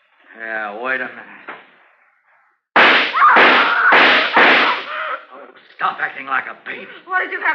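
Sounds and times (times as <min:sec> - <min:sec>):
speech: 0:00.4 - 0:01.5, 0:05.8 - 0:07.5
gunshots fired from a gun into a wall: 0:02.8 - 0:04.9.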